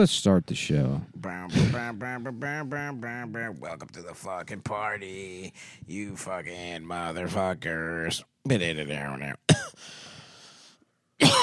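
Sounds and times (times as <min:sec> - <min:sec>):
speech: 0:00.0 - 0:10.0
harsh cough from a tickle in the throat: 0:09.5 - 0:09.8, 0:11.2 - 0:11.4.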